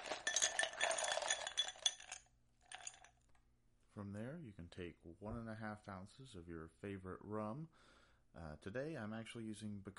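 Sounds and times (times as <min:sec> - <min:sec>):
ice cubes poured into a highball glass for a Cuba Libre cocktail: 0:00.0 - 0:03.2
speech: 0:04.0 - 0:09.9.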